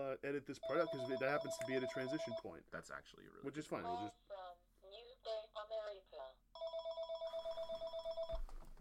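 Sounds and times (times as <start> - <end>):
speech: 0.0 - 5.0
electronic telephone ringing: 0.6 - 2.5, 6.6 - 8.4.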